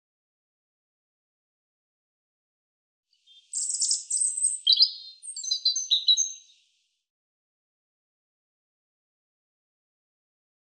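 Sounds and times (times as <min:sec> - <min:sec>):
European robin singing: 0:03.2 - 0:06.7.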